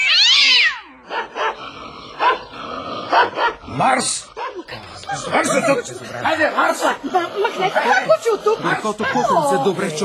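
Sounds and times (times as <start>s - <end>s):
cat yowling and crying: 0.0s - 1.3s
speech: 3.8s - 10.0s
laughter: 4.4s - 10.0s.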